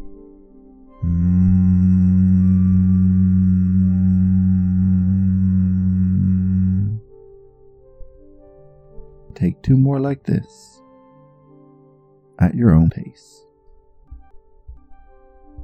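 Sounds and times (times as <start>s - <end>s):
person humming on the exhale on one low pitch: 1.0s - 7.1s
speech: 9.4s - 10.7s, 12.4s - 13.5s.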